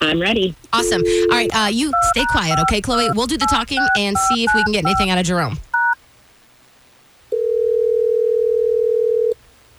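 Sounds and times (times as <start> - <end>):
faint hiss: 0.0 - 9.7
speech: 0.1 - 5.7
telephone ringing tone from an outgoing call: 0.8 - 5.1, 7.3 - 9.4.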